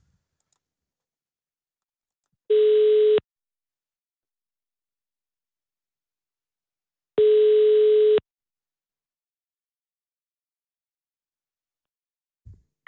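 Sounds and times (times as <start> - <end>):
telephone ringing tone: 2.5 - 3.2, 7.2 - 8.2.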